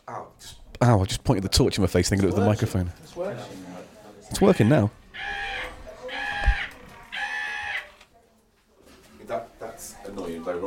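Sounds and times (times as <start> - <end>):
speech: 0.1 - 3.6, 4.3 - 5.4
rooster crowing: 5.1 - 8.0.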